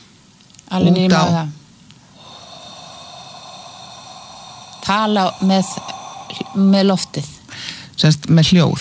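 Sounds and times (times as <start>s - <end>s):
speech: 0.7s - 1.6s, 4.9s - 7.4s, 8.0s - 8.8s
deep breath in through the nose into the belly: 2.0s - 8.0s.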